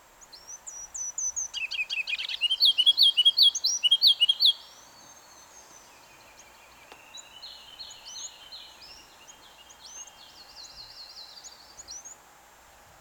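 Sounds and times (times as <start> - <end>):
ruby-crowned kinglet singing: 0.0 - 12.3
faint hiss: 0.0 - 13.0.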